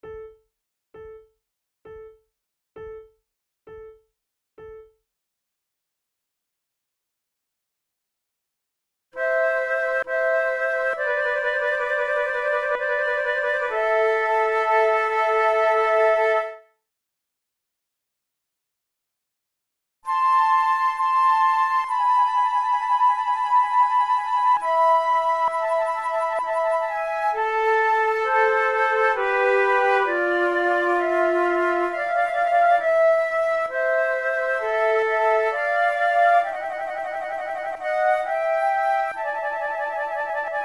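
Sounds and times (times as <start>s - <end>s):
flute sonata adagio: 9.2s - 16.6s, 20.1s - 40.6s.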